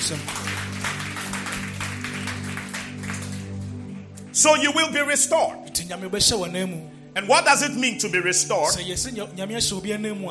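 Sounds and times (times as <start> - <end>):
audience clapping hands: 0.0 - 5.0
speech: 0.1 - 0.4, 4.4 - 10.2.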